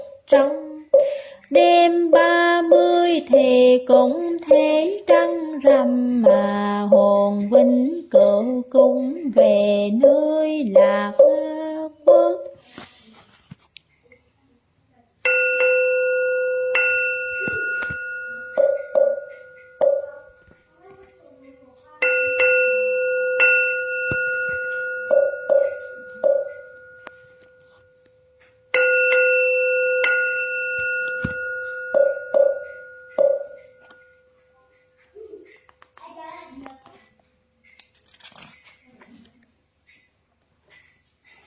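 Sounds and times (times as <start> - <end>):
speech: 0.3 - 0.6, 1.5 - 11.5
bell ringing: 15.2 - 20.7, 22.0 - 34.9.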